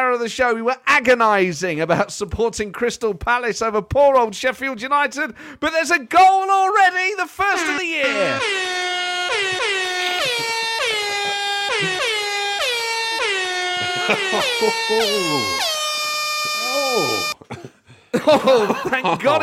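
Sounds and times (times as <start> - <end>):
speech: 0.0 - 9.6, 14.1 - 15.8, 17.0 - 19.4
loud brassy air horn playing a melody: 7.5 - 17.4
laughter: 9.6 - 12.4, 13.1 - 15.7, 16.5 - 19.4.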